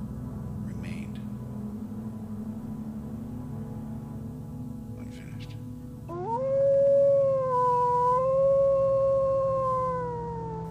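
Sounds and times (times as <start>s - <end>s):
wolf howling: 6.1s - 10.6s.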